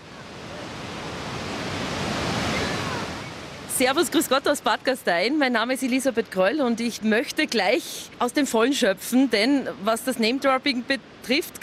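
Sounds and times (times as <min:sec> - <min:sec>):
rushing water: 0:00.0 - 0:11.6
speech: 0:03.8 - 0:11.6.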